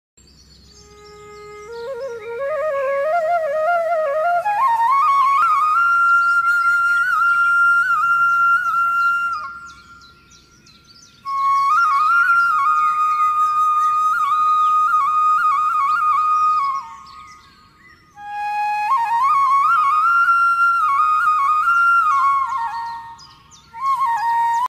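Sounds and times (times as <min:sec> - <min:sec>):
Himalayan mountain flute morning meditation music: 0:00.3 - 0:24.6.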